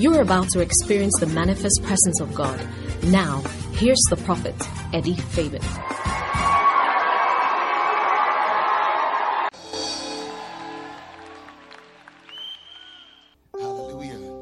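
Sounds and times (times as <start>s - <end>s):
speech: 0.0s - 6.1s
large group clapping and cheering to celebrate the Lord: 5.7s - 13.4s.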